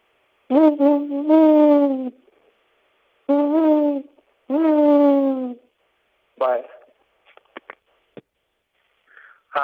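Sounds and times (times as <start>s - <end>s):
speech: 0.5s - 1.4s
person imitating owl hoots: 0.5s - 2.2s, 3.3s - 5.7s.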